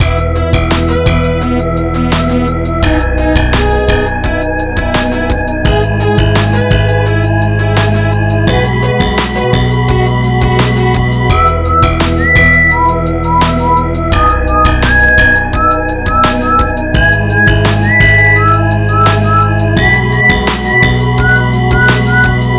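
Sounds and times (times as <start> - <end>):
Realtek MIDI double mashup: 0.0 - 22.5.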